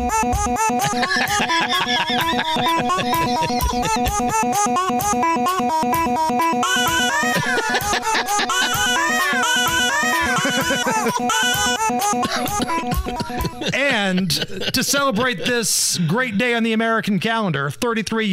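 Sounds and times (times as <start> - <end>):
loud driving rock track built from chopped newborn baby coos and squeals: 0.0 - 13.8
speech: 0.2 - 18.3
laughter: 0.8 - 4.6, 6.9 - 16.6.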